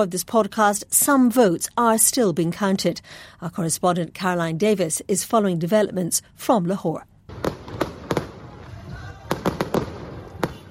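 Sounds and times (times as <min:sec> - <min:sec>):
speech: 0:00.0 - 0:07.1
sharp fireworks bangs at a rally: 0:07.3 - 0:10.6
din of an outdoor crowd at a rally: 0:07.4 - 0:10.6.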